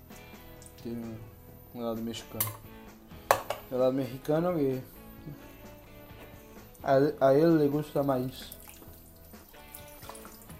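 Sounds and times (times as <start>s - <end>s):
speech: 0.8s - 2.7s, 3.7s - 5.5s, 6.8s - 8.6s
liquid draining out of an opened can of corn: 8.0s - 10.5s.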